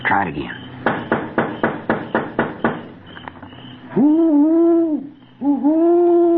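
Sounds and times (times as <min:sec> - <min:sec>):
slow steady taps on a house: 0:00.8 - 0:03.6
long drawn-out owl-like hoots: 0:03.5 - 0:06.3.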